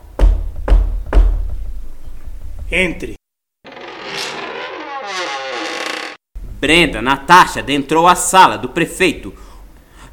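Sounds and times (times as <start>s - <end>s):
firm knocking on a door: 0.2s - 1.6s
speech: 2.7s - 3.2s, 6.6s - 9.4s.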